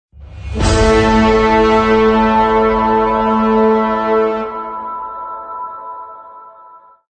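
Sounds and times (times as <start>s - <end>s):
epic impact logo music: 0.2s - 5.6s.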